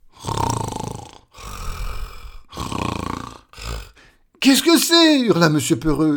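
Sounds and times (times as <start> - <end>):
loud exaggerated snoring performed by a human voice: 0.0 - 4.2
speech: 4.4 - 6.1.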